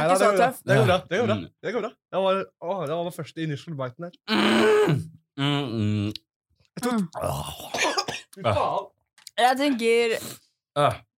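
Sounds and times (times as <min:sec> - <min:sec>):
speech: 0:00.0 - 0:06.2, 0:06.8 - 0:11.1
strained throaty vocal sounds of person catching breath: 0:04.3 - 0:07.9
harsh coughing after eating hot pepper: 0:06.8 - 0:08.5.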